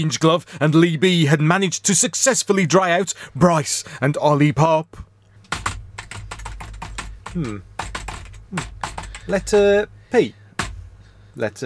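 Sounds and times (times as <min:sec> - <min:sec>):
speech: 0:00.0 - 0:05.1, 0:07.4 - 0:07.7, 0:08.5 - 0:10.4, 0:11.4 - 0:11.6
rapid typing on a computer keyboard: 0:05.5 - 0:09.7.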